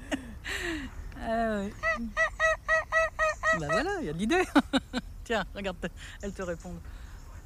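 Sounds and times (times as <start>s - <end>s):
speech: 1.3s - 2.3s, 3.6s - 7.0s
wild geese honking: 1.8s - 4.2s.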